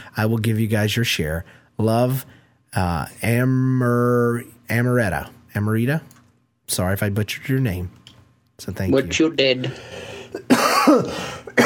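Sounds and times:
speech: 0.2s - 8.0s, 8.6s - 11.6s
person coughing harshly: 10.2s - 11.6s
throat clearing: 10.4s - 11.6s.

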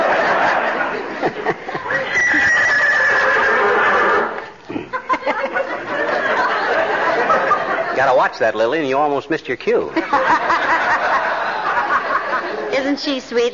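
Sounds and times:
laughter: 0.0s - 8.3s, 9.9s - 12.7s
mare whinnying: 1.9s - 4.4s
speech: 8.2s - 10.5s, 12.8s - 13.5s.

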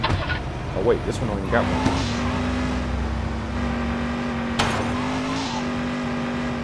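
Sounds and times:
video game car engine droning during a driving mini-game: 0.0s - 6.6s
speech: 0.8s - 2.1s
video game tire screech: 1.4s - 3.0s, 4.6s - 6.6s.

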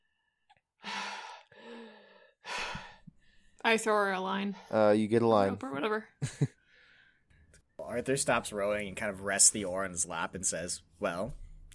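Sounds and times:
person gasping for air after surfacing from swimming: 0.8s - 3.1s
speech: 3.6s - 6.6s, 7.9s - 11.4s.

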